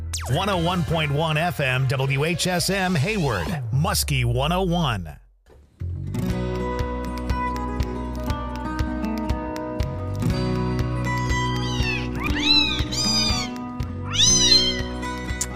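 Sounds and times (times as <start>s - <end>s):
speech: 0.1s - 5.2s
upbeat music track with a regular beat: 6.3s - 15.5s
kitten meowing: 11.2s - 15.5s.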